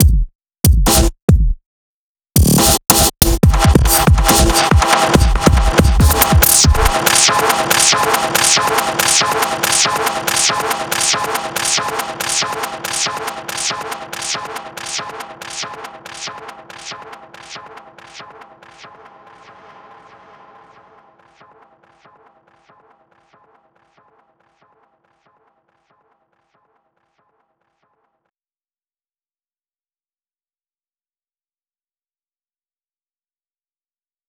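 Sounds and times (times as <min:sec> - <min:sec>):
drum: 0:00.0 - 0:01.6, 0:02.4 - 0:19.2.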